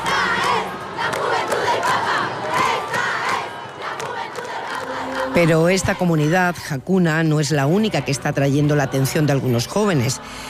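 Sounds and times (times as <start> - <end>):
concert audience ovation and cheering: 0.0 - 6.1
speech: 5.4 - 10.4.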